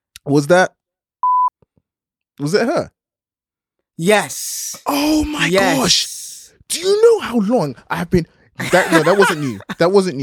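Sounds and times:
speech: 0.2s - 0.8s, 2.4s - 3.0s, 4.0s - 10.2s
mid-pitched censor beep: 1.2s - 1.5s
laughter: 8.6s - 9.8s.

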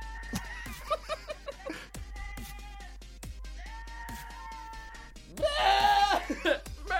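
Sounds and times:
laughter: 0.3s - 2.2s, 5.9s - 6.9s
goat screaming and bleating played from laptop speaker: 3.9s - 6.3s.

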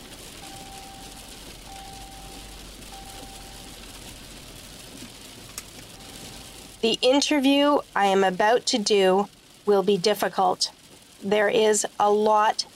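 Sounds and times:
dense rain pelting a car windshield on a steep winding road: 0.0s - 12.7s
speech: 6.8s - 12.7s.

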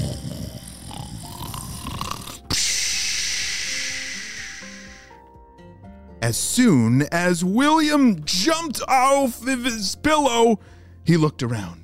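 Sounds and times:
loud snoring: 0.0s - 5.2s
long hissing exhale: 2.5s - 5.3s
speech: 6.3s - 11.8s.

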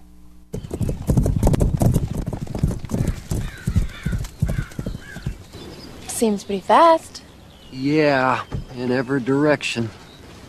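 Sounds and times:
horse hooves clip-clopping while running: 0.5s - 6.2s
faint bird calls chirping: 2.6s - 10.4s
speech: 6.2s - 10.0s.

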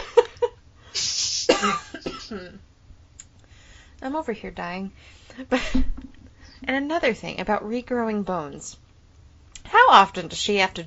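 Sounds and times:
person coughing: 1.4s - 2.6s
speech: 1.6s - 2.7s, 4.0s - 8.8s, 9.9s - 10.8s.

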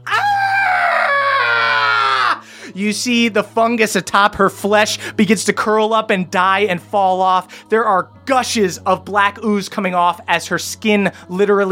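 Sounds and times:
woman shrieking in pain: 0.0s - 2.4s
speech: 2.8s - 11.7s.

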